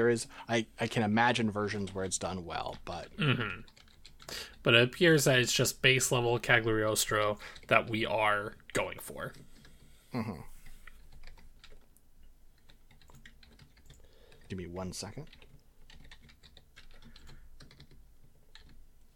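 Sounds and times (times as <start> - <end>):
speech: 0.0 - 9.5, 10.1 - 10.5, 14.5 - 15.4
rapid uneven typing on a computer keyboard: 1.7 - 4.6, 9.3 - 9.9, 10.6 - 18.9.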